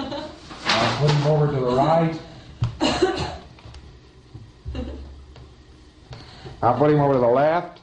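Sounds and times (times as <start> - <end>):
speech: 1.0 - 2.3, 6.6 - 7.8
harsh raspy coughing: 2.8 - 3.5.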